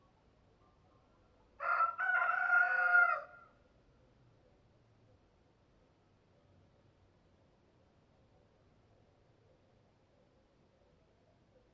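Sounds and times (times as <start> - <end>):
rooster crowing cock-a-doodle-doo: 1.6 - 3.5.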